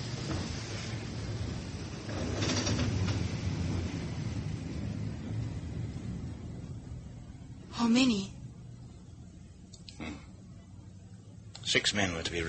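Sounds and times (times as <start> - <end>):
train rolling into a station with low rumble: 0.0 - 12.4
speech: 7.8 - 8.3, 11.7 - 12.4.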